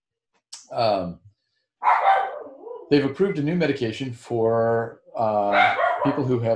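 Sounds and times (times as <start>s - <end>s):
speech: 0.7s - 1.2s, 2.9s - 6.5s
dogs barking indoors: 1.8s - 3.0s, 5.4s - 6.4s.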